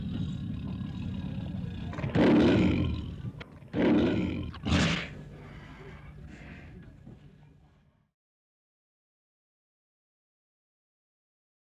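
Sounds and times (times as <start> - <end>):
tiger snarling and roaring: 0.0 - 5.2.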